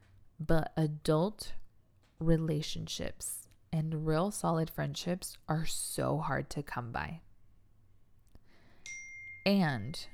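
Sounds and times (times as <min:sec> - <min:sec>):
speech: 0:00.4 - 0:01.6, 0:02.2 - 0:07.3, 0:09.5 - 0:10.1
phone notification ding: 0:08.8 - 0:09.7.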